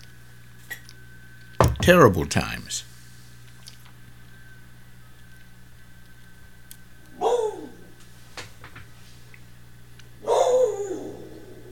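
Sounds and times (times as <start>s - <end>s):
faint steady hum: 0.0s - 11.7s
speech: 1.8s - 2.9s
dog barking at the front door: 10.2s - 11.2s.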